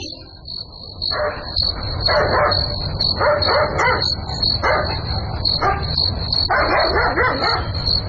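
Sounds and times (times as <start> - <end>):
dog barking at night: 1.1 - 5.9, 6.5 - 7.9.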